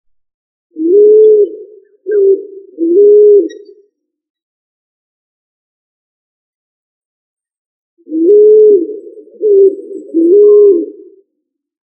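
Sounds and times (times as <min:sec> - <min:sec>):
pigeon cooing with low soft hooting notes: 0:00.8 - 0:03.8, 0:08.1 - 0:11.1.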